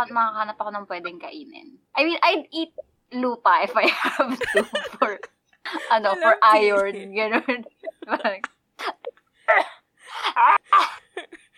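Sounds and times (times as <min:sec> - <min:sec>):
speech: 0:00.0 - 0:11.4
person imitating crying with whimpering wails and sobs: 0:04.4 - 0:11.5.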